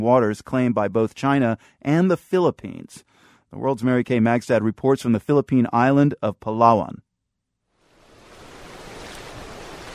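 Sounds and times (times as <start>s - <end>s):
speech: 0.0s - 7.0s
water washing up against a sandy beach: 8.0s - 9.9s.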